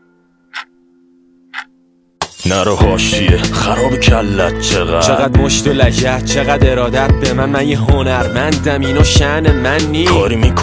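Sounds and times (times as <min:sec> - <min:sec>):
clock ticking: 0:00.5 - 0:00.7, 0:01.5 - 0:01.7
speech: 0:02.4 - 0:10.6.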